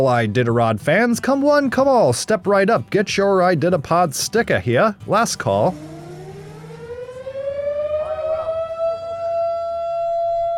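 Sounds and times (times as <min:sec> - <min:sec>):
speech: 0:00.0 - 0:05.9
civil defense siren wailing in Nome, Alaska: 0:05.6 - 0:10.5.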